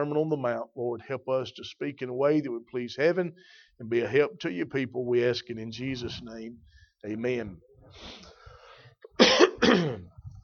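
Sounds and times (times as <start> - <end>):
speech: 0.0 - 8.3
harsh broadband coughs: 9.2 - 10.2.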